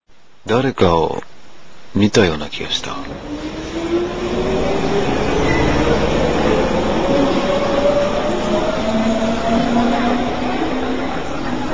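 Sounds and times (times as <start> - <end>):
speech: 0.4 - 1.3, 1.9 - 3.6
crowded morning train rumbling along the rails: 2.8 - 11.7.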